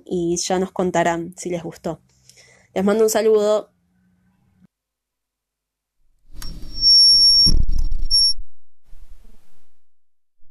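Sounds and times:
speech: 0.1 - 2.2, 2.8 - 3.7
high electronic beep: 6.4 - 8.5.

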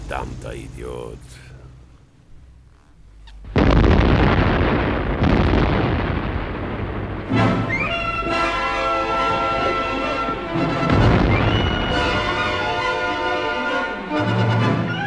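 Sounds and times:
roaring crackling rumble of wrecked car: 0.0 - 14.9
speech: 0.1 - 1.5
car bomb with special explosive mix exploding: 3.4 - 14.6.

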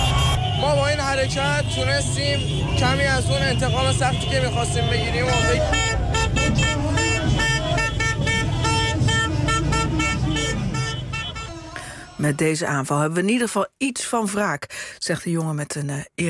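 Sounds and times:
crowd voices in a street celebration in Tehran: 0.0 - 11.1
car horns honking in a street celebration in Tehran: 0.0 - 12.4
speech: 1.2 - 6.4, 12.2 - 16.2.

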